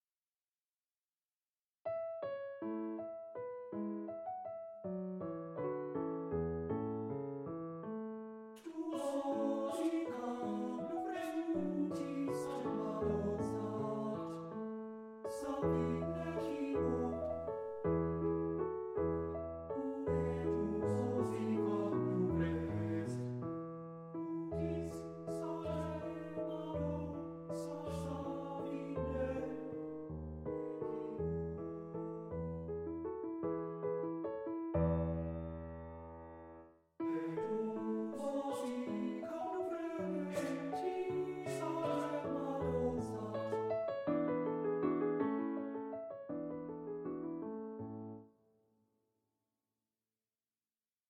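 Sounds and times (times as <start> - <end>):
piano playing an andantino: 1.8 - 48.5
person singing an andantino lied: 8.6 - 14.4, 15.3 - 17.3, 19.7 - 23.3, 24.4 - 29.7, 37.0 - 43.7.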